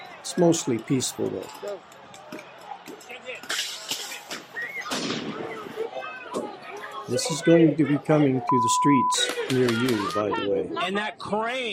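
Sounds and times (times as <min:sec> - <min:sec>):
noisy crowd murmuring: 0:00.0 - 0:11.3
speech: 0:00.3 - 0:02.0, 0:07.1 - 0:11.7
fireworks popping and banging in the street: 0:03.0 - 0:05.8.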